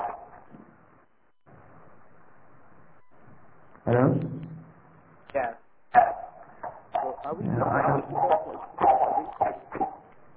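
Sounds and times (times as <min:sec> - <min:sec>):
dog barking in short sharp bursts: 0:00.0 - 0:00.4, 0:05.9 - 0:10.1
speech: 0:03.9 - 0:04.4.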